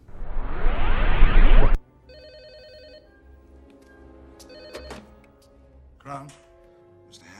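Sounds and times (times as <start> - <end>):
rising electrical surge as the power is turned back on: 0.0 - 1.8
telephone ringing with a warbling electronic trill: 2.1 - 3.1, 4.5 - 5.1.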